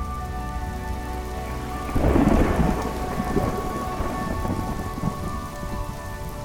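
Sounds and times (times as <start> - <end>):
deep rumble of thunder: 0.0 - 6.4
monsoon rain pattering on a surface: 0.0 - 6.4.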